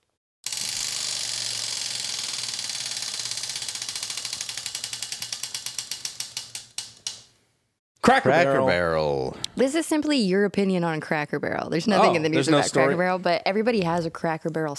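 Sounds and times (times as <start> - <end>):
ratchet clicks from a spinning prize wheel: 0.4 - 7.3
speech: 8.1 - 14.7.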